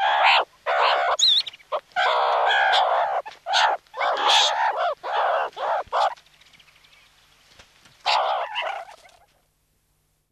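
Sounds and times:
meerkat giving a harsh wavering call: 0.0s - 6.2s, 8.0s - 9.3s.

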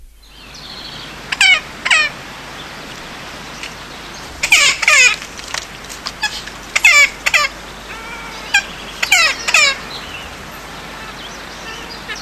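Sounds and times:
faint background hiss: 0.0s - 12.2s
Magellanic woodpecker harsh nasal squawks: 4.4s - 12.2s.

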